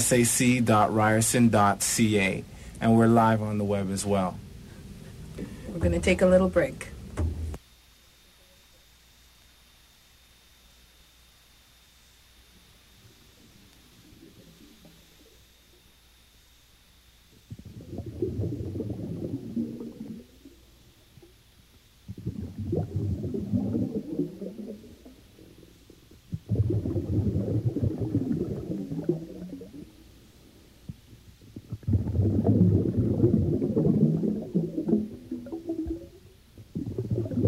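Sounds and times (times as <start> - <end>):
speech: 0.0 - 4.4, 5.4 - 7.3
deep water surges: 17.5 - 21.2, 22.1 - 30.0, 30.9 - 37.4.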